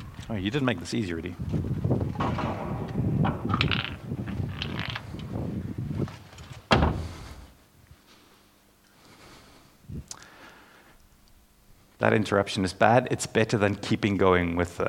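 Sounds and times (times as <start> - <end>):
speech: 0.3 - 2.6, 3.2 - 3.9, 12.1 - 14.8
door shutting with a solid thud: 2.1 - 4.8, 6.6 - 7.5
door scraping and creaking: 2.1 - 5.4, 6.3 - 7.5.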